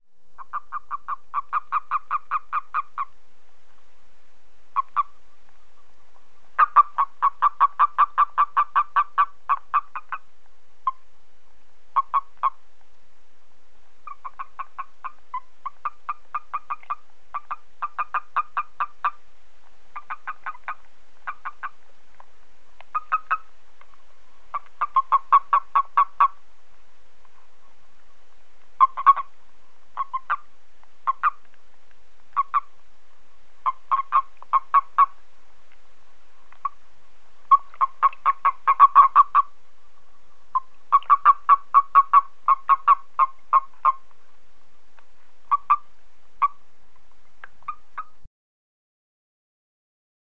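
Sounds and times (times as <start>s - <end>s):
skrubtudse toad calling: 0.4s - 3.2s, 4.7s - 5.2s, 6.4s - 11.1s, 11.9s - 12.6s, 14.0s - 19.2s, 19.9s - 21.8s, 22.8s - 26.4s, 28.8s - 31.6s, 32.3s - 32.8s, 33.6s - 35.2s, 36.5s - 36.8s, 37.4s - 44.2s, 45.4s - 46.7s, 47.4s - 48.3s.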